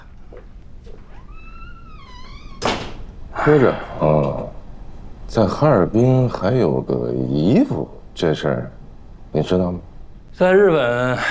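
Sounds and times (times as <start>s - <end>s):
door being shut: 1.9s - 3.1s
speech: 3.4s - 4.6s, 5.3s - 11.2s.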